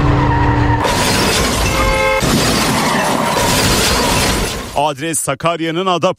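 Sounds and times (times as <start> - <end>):
out-of-control car crashing into a cafe's outdoor terrace: 0.0 - 4.8
smashing and shattering: 0.8 - 4.8
speech: 4.8 - 6.1.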